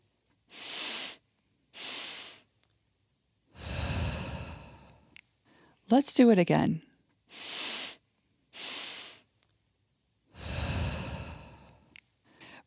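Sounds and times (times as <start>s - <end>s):
long forceful exhale through pursed lips: 0.5s - 1.2s, 1.8s - 2.4s, 3.6s - 5.0s, 7.3s - 8.0s, 8.6s - 9.2s, 10.4s - 11.8s
sharp sniffing inhales through the nose: 0.5s - 2.5s, 3.6s - 5.8s, 7.3s - 9.4s, 10.4s - 12.6s
speech: 5.9s - 6.9s.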